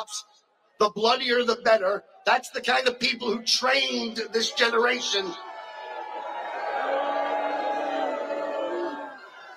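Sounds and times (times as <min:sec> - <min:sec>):
speech: 0:00.0 - 0:05.5
rally crowd booing: 0:04.2 - 0:09.5.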